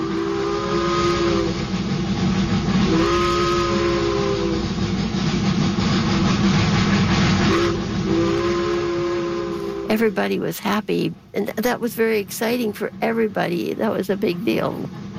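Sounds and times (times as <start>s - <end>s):
steam train whistle blasts: 0.0s - 1.7s, 2.8s - 4.8s, 7.4s - 9.9s
steam train chugging: 0.0s - 15.1s
speech: 10.0s - 15.0s.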